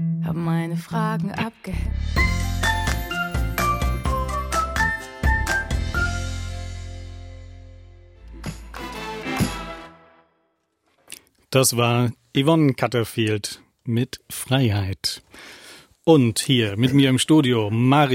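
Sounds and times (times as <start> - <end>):
speech: 0.3 - 2.8, 11.5 - 18.1
song on the radio with bell-like melody over deep bass: 1.4 - 6.2.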